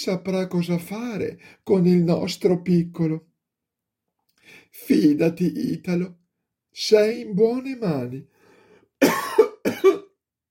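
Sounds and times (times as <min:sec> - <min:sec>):
speech: 0:00.0 - 0:03.3, 0:04.5 - 0:06.2, 0:06.8 - 0:08.3
character in a children's story coughing: 0:09.0 - 0:10.2.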